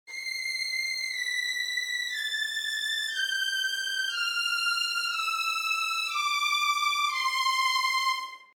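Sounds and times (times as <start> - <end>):
strings with no effect: 0.1 - 8.5.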